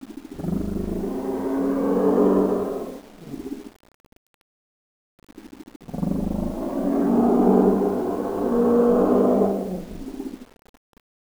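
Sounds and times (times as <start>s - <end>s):
growl: 0.4s - 3.6s, 5.9s - 10.4s.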